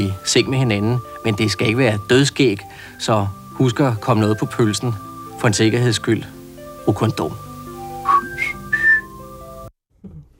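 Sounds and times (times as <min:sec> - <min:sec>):
speech: 0:00.0 - 0:07.5
steady sustained musical backing: 0:00.0 - 0:09.7
short whistled notes in an AIDS-awareness spot: 0:07.9 - 0:09.2.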